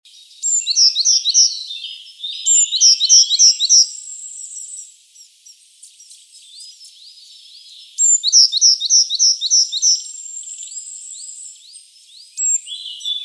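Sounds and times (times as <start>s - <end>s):
Eurasian blue tit Cyanistes caeruleus calling in rapid high chirps: 0.1s - 13.2s.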